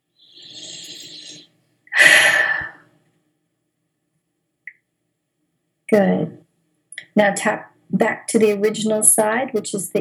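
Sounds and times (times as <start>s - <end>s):
loud noisy breath: 0.4s - 2.9s
speech: 5.9s - 6.4s, 7.2s - 10.0s.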